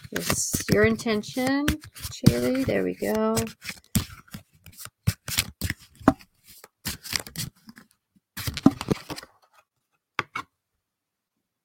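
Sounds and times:
deck of cards being shuffled: 0.0 - 9.3
speech: 0.1 - 3.8.

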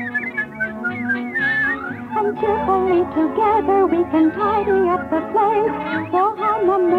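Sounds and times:
person whistling a lively melody: 0.0 - 2.6
soft musical accompaniment: 0.0 - 6.9
speech: 2.3 - 6.9.

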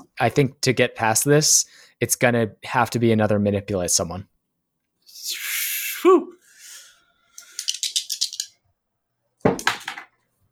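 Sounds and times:
speech: 0.2 - 4.3, 5.2 - 5.4
two dice rattling in a shake: 7.4 - 8.6.

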